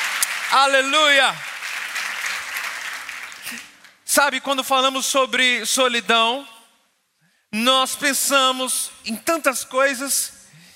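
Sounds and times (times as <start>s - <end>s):
audience applauding: 0.0s - 4.1s
speech: 0.5s - 1.5s, 3.5s - 6.6s, 7.5s - 10.4s.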